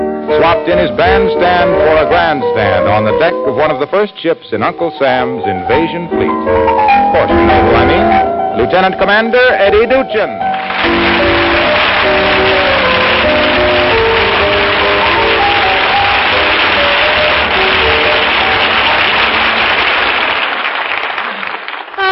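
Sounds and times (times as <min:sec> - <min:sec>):
band music: 0:00.0 - 0:03.9, 0:05.2 - 0:19.8
speech: 0:00.4 - 0:11.6
studio audience applause: 0:10.5 - 0:22.1.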